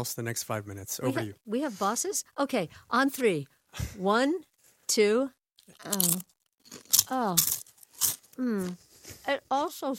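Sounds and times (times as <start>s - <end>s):
speech: 0.0s - 7.6s, 8.4s - 9.9s
people biting into crunchy food: 5.6s - 8.8s.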